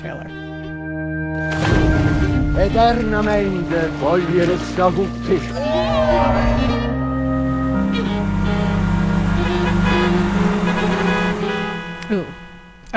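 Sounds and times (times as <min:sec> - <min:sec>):
speech: 0:00.0 - 0:00.4, 0:02.6 - 0:06.8
rumbling background: 0:01.5 - 0:12.9
car horn honking: 0:06.8 - 0:12.9.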